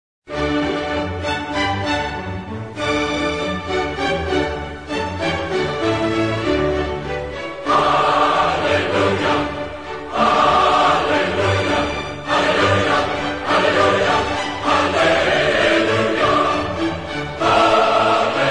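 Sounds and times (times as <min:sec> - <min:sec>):
orchestra playing: 0:00.3 - 0:18.4
choir singing: 0:05.0 - 0:18.4.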